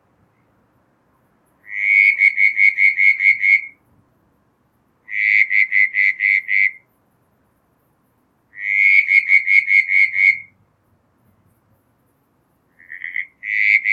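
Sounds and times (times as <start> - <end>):
southern brown tree frog calling: 1.6 - 3.8, 5.0 - 6.9, 8.5 - 10.6, 12.7 - 13.9.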